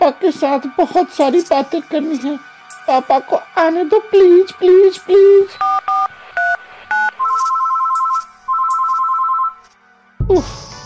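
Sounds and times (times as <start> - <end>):
speech: 0.1 - 5.7, 10.3 - 10.6
electronic phone-dialing beeps: 5.6 - 9.6.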